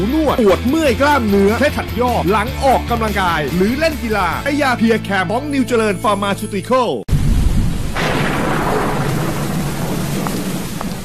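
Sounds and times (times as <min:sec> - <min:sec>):
speech: 0:00.0 - 0:07.1
deep rumble of thunder: 0:07.1 - 0:11.0
heavy rain: 0:07.1 - 0:11.0.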